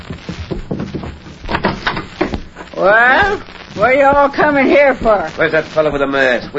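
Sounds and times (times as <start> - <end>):
door opening with knocking, rattling and creaking: 0.4 - 2.7
speech: 2.8 - 6.5.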